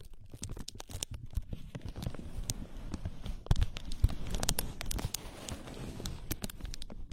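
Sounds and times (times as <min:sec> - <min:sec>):
ear massage without voices: 0:01.5 - 0:07.0.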